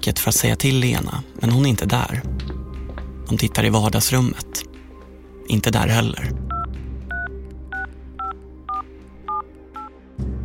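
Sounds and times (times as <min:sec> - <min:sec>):
speech: 0:00.0 - 0:02.5, 0:03.3 - 0:04.7, 0:05.5 - 0:06.4
telephone keypad dual-pitched tones: 0:06.5 - 0:09.9.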